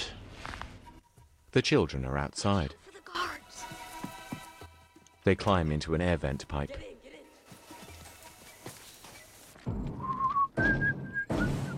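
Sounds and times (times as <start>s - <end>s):
speech: 1.5s - 2.8s, 5.2s - 6.9s
person whistling a short wavering tune: 10.0s - 11.7s.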